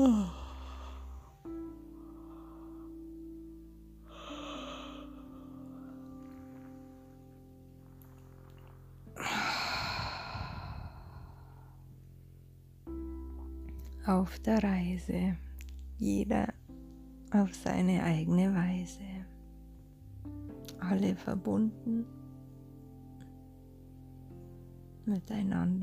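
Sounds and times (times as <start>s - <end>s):
loud drawn-out breathy yawn: 0.0s - 1.0s, 9.2s - 11.4s
low sustained musical drone: 0.0s - 25.8s
speech: 14.1s - 15.4s, 16.0s - 16.6s, 17.3s - 19.1s, 20.9s - 22.2s, 25.1s - 25.8s.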